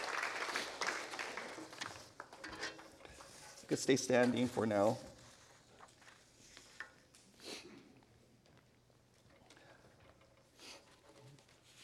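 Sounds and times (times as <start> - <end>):
church audience clapping during a worship service: 0.0 - 2.4
speech: 3.7 - 5.1.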